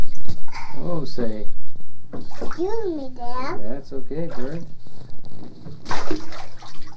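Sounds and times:
speech: 0.8s - 4.8s, 5.4s - 6.4s
bath water splashing in a tub: 2.2s - 2.9s, 4.1s - 4.8s, 5.6s - 6.9s.

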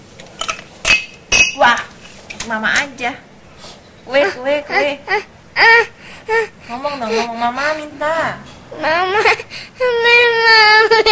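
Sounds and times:
speech: 2.5s - 3.3s, 4.0s - 11.0s
young child crying: 4.1s - 7.3s, 8.7s - 11.0s.

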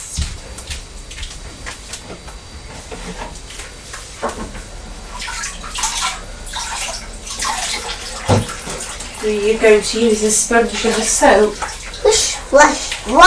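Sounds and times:
hands being washed under running tap water: 0.0s - 13.2s
speech: 9.2s - 13.2s.

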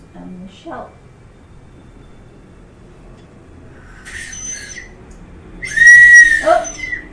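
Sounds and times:
speech: 0.5s - 1.0s
small toy whistle from a party bag blown: 4.1s - 4.9s, 5.6s - 7.0s.

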